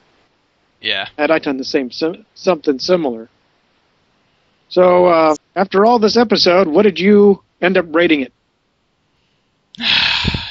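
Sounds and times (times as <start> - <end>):
speech: 0.8 - 3.4, 4.7 - 8.4, 9.8 - 10.0
deep breath drawn in sharply through the mouth: 9.9 - 10.5.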